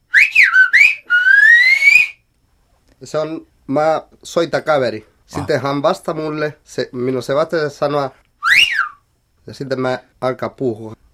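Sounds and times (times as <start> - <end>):
person whistling the closing phrase of a whistled-language message: 0.1 - 2.2, 8.4 - 9.0
speech: 3.0 - 8.2, 9.5 - 11.0.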